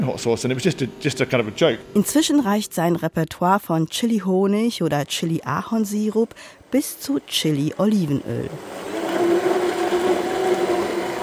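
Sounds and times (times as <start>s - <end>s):
speech: 0.0s - 8.9s
large electric immersion blender mixing homemade hot cranberry sauce: 8.4s - 11.2s.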